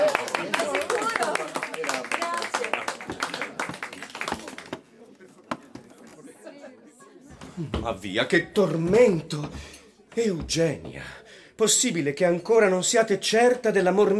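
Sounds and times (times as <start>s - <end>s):
crowd applause welcoming two young actors: 0.0s - 4.9s
murmuring voices: 0.0s - 11.4s
speech: 7.6s - 14.1s.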